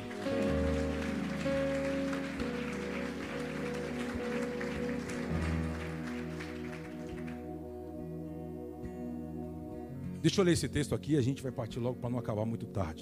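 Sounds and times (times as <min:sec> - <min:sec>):
audience applauding in worship: 0:00.0 - 0:07.7
sustained keyboard chords: 0:00.0 - 0:13.0
speech: 0:10.2 - 0:13.0.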